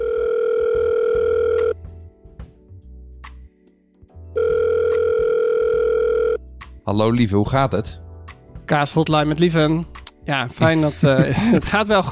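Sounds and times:
steady loud telephone line tone while a call is being placed: 0.0s - 1.8s, 4.4s - 6.4s
speech: 6.9s - 8.0s, 8.7s - 12.1s
laughter: 10.5s - 12.1s.

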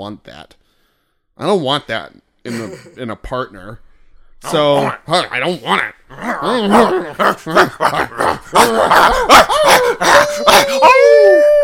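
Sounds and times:
speech: 0.0s - 0.6s, 1.4s - 11.6s
dog barking and yipping: 8.5s - 10.9s
dog howling: 8.5s - 11.6s.

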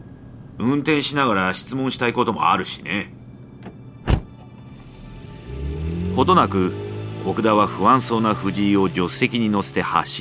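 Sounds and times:
speech: 0.6s - 3.2s, 6.2s - 10.1s
Toyota Prius driver-side door latch click: 3.6s - 4.5s.

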